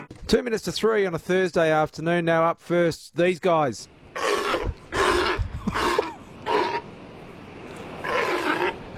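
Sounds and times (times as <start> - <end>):
speech: 0.3 - 4.3
Australian sea lion barking roars: 4.1 - 6.9, 7.8 - 8.9.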